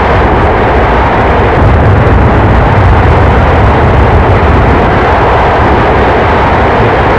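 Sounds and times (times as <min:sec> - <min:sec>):
CFM56 jet engine reverse thrust: 0:00.0 - 0:07.1.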